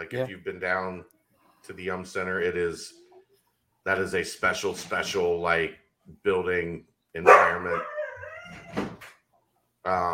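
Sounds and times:
speech: 0:00.0 - 0:03.0, 0:03.8 - 0:07.9, 0:09.8 - 0:10.1
dog howling: 0:07.3 - 0:08.9
dog whimpering: 0:07.7 - 0:08.8.

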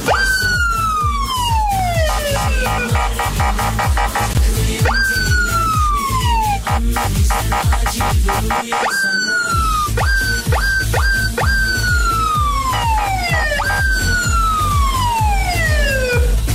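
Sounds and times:
police siren wailing: 0:00.1 - 0:16.4.

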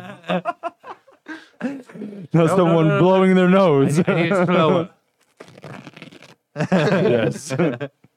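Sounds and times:
laughter: 0:00.0 - 0:02.9, 0:03.8 - 0:05.0, 0:06.6 - 0:08.0
speech: 0:00.3 - 0:00.6, 0:01.6 - 0:05.0, 0:06.6 - 0:08.0
paper towel being ripped: 0:05.1 - 0:06.5.

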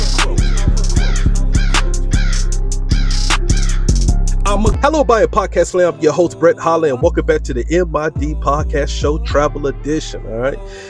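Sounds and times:
crows cawing: 0:00.0 - 0:04.0
speech: 0:04.6 - 0:10.8.

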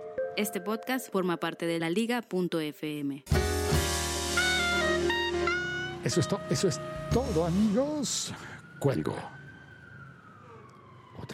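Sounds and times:
speech: 0:00.4 - 0:03.5, 0:06.1 - 0:09.4
ambulance siren passing outside: 0:04.4 - 0:11.3.

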